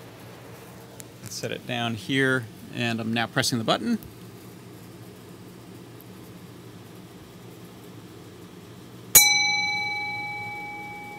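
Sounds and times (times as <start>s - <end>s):
speech: 1.3s - 4.2s
metal bowl struck by a striker chiming: 9.2s - 11.1s.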